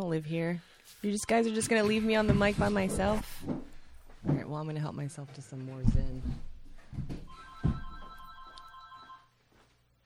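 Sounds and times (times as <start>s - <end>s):
speech: 0.1s - 7.2s
telephone ringing with a steady electronic tone: 7.3s - 9.4s.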